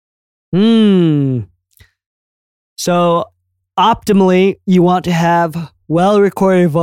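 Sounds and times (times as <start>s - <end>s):
speech: 0.5s - 0.9s, 2.8s - 6.8s
person yawning: 0.6s - 1.5s.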